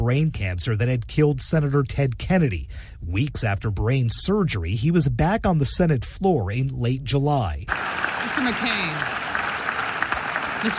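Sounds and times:
speech: 0:00.0 - 0:09.2, 0:10.6 - 0:10.7
senators applauding on the Senate floor: 0:07.7 - 0:10.7.

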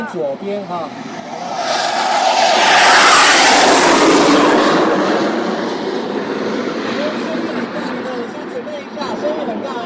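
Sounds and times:
F-16 fighter jet roaring past on takeoff: 0:00.9 - 0:08.4.

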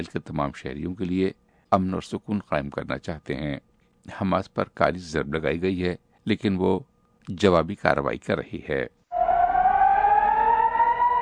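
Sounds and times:
speech: 0:00.0 - 0:09.0
air raid siren wailing during a rocket attack in southern Israel: 0:09.1 - 0:11.2.

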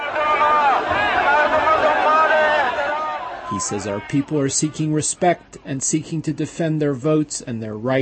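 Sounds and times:
large protest crowd shouting and cheering: 0:00.0 - 0:05.1
speech: 0:03.5 - 0:08.0.

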